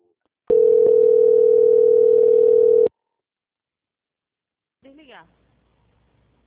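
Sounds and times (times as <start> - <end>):
telephone call transfer tone during a bank call: 0.5 - 2.9.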